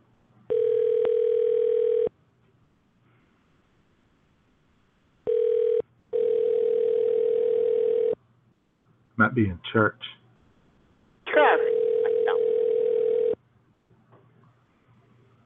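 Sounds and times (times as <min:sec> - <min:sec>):
telephone dial tone while dialing a number: 0:00.5 - 0:02.1, 0:05.3 - 0:08.2, 0:11.7 - 0:13.4
speech: 0:09.3 - 0:10.2.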